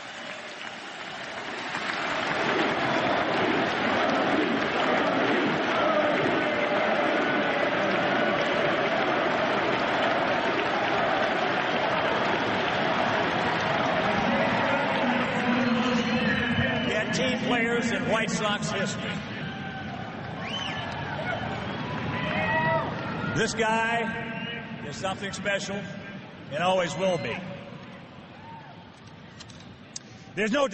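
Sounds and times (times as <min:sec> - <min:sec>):
large stadium crowd clapping and cheering at a retirement ceremony: 0:00.0 - 0:24.0
speech: 0:18.4 - 0:19.2, 0:23.4 - 0:24.3, 0:24.9 - 0:25.9, 0:26.5 - 0:27.5, 0:30.4 - 0:30.7.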